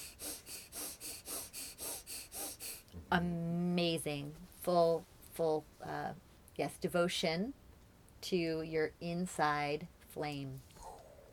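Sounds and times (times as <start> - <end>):
breath of fire, rapid yogic breathing with the belly pumping: 0.0 - 3.0
speech: 3.1 - 7.6, 8.2 - 10.7.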